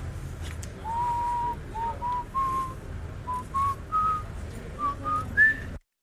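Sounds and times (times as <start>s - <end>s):
person whistling a slow wavering melody: 0.8s - 4.2s, 4.8s - 5.7s.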